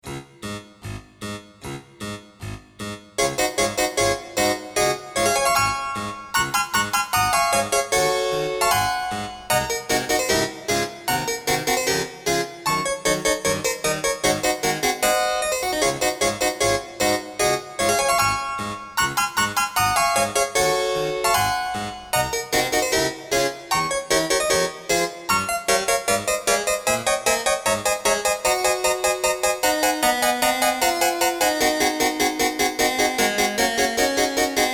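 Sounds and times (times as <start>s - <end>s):
harpsichord piece in 31edo tuning: 0.1s - 34.7s.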